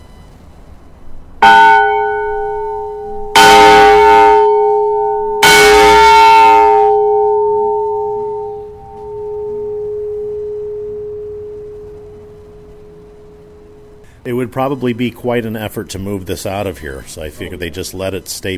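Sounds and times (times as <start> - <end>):
large heavy fire warning bell clanging: 1.4 - 14.0
speech: 14.6 - 18.5.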